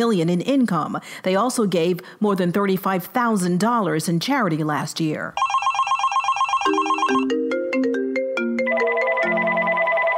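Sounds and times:
speech: 0:00.0 - 0:05.5
telephone ringing with a repeating electronic tone pattern: 0:05.4 - 0:07.4, 0:08.4 - 0:10.1.

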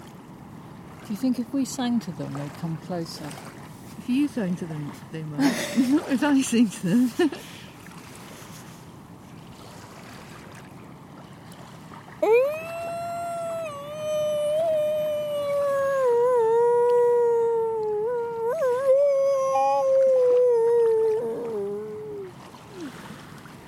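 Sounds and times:
speech: 0:01.1 - 0:07.6
person imitating seal calls: 0:12.2 - 0:22.9.

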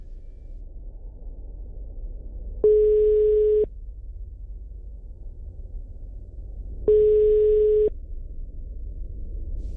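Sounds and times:
outgoing phone call ringing tone through the line: 0:02.6 - 0:03.7, 0:06.9 - 0:07.9.

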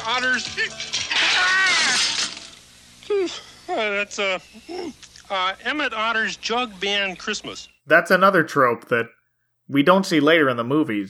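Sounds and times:
bicycle crashing into something: 0:00.0 - 0:02.6
speech: 0:00.2 - 0:02.2, 0:03.2 - 0:11.0.

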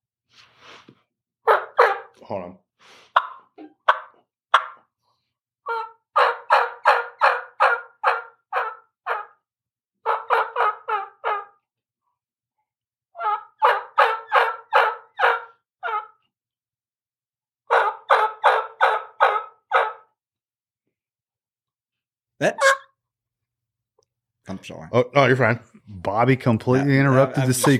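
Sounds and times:
turkey call yelping imitating a gobbler: 0:01.4 - 0:02.1, 0:03.2 - 0:04.8, 0:05.6 - 0:09.4, 0:10.0 - 0:11.6, 0:13.2 - 0:16.2, 0:17.7 - 0:20.0, 0:22.4 - 0:23.0
speech: 0:02.2 - 0:02.7, 0:24.7 - 0:27.7.

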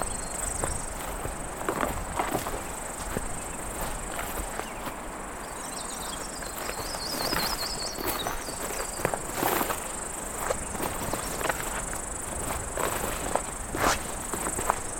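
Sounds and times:
cicada buzzing in a tree: 0:00.0 - 0:05.0, 0:06.0 - 0:14.9
footsteps crunching: 0:00.0 - 0:14.9.

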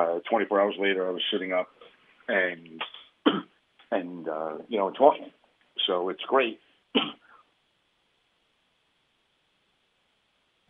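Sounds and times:
speech: 0:00.0 - 0:07.2
person coughing: 0:03.3 - 0:03.5, 0:07.0 - 0:07.3.

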